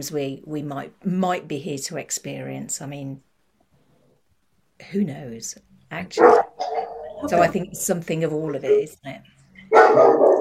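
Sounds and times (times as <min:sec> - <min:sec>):
speech: 0:00.0 - 0:03.3, 0:04.8 - 0:06.6, 0:07.2 - 0:10.3
dog barking: 0:06.2 - 0:07.3, 0:09.7 - 0:10.3.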